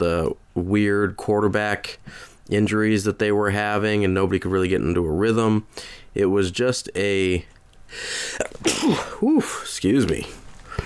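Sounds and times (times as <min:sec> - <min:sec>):
speech: 0:00.0 - 0:10.4
human sneeze: 0:08.2 - 0:09.6.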